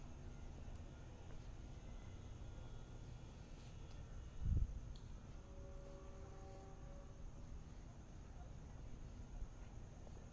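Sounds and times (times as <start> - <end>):
faint high whine: 0.0 - 10.3
low rumble of traffic in a village at night: 0.0 - 10.3.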